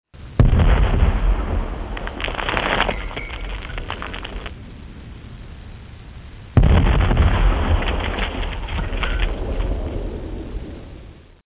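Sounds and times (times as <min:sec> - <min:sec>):
10-pounder cannon firing canister shot: 0:00.4 - 0:04.5, 0:06.6 - 0:10.5.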